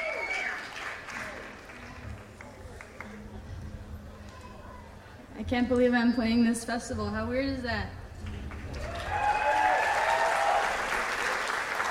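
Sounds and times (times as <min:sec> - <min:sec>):
whistles: 0:00.0 - 0:00.7
faint cheering: 0:00.0 - 0:01.9, 0:08.7 - 0:11.8
audience applause: 0:00.0 - 0:03.4, 0:08.2 - 0:11.8
speech: 0:05.4 - 0:08.0.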